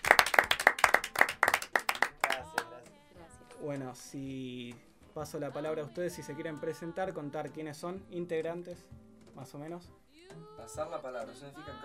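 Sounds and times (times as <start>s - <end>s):
small audience applause after a jazz and bossa nova recital: 0.0s - 2.6s
speech: 3.6s - 11.8s.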